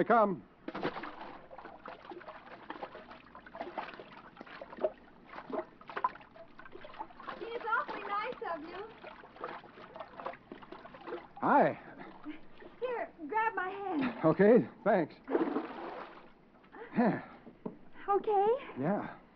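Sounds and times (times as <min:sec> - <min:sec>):
speech: 0:00.0 - 0:00.5, 0:11.4 - 0:11.8, 0:14.2 - 0:15.4, 0:17.0 - 0:17.3, 0:18.1 - 0:19.2
rhythmic splashing of someone swimming through water: 0:00.7 - 0:12.8, 0:15.3 - 0:16.3.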